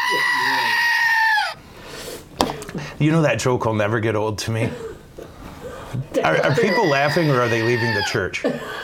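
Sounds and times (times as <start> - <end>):
screaming goat sound effect: 0.0 - 1.6, 6.6 - 8.2
speech: 0.1 - 0.5, 3.0 - 4.9, 6.2 - 8.8.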